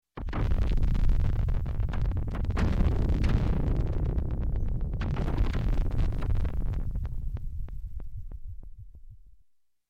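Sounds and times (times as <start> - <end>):
electronic space explosion blasts: 0.2 - 7.7.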